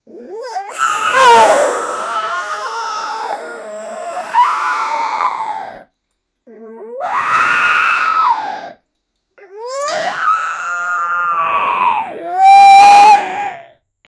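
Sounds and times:
female zombie screaming: 0.5 - 5.8, 7.0 - 8.8, 9.6 - 13.7.

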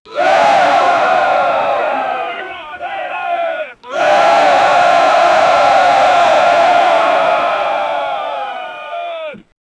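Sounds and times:
giant orc army chanting: 0.1 - 9.5.

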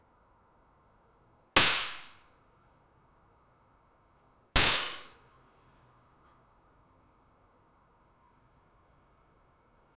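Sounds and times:
Glock 19 pistol real shot: 1.6 - 2.2, 4.6 - 5.2.

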